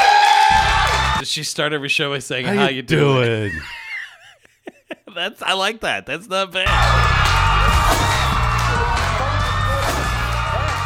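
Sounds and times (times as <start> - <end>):
studio audience screaming and cheering: 0.0 - 1.2, 6.7 - 10.8
speech: 1.3 - 3.8, 5.2 - 7.2
laughter: 2.5 - 5.2.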